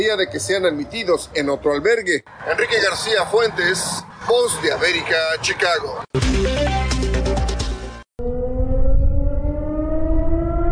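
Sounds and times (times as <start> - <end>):
speech: 0.0 - 6.8
music: 6.2 - 8.1
air raid siren wailing in the city of Kupiansk: 8.2 - 10.7.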